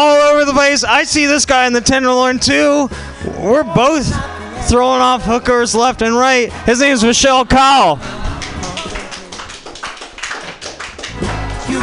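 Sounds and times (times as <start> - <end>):
speech: 0.0 - 8.2
muted crowd applause: 8.4 - 11.8.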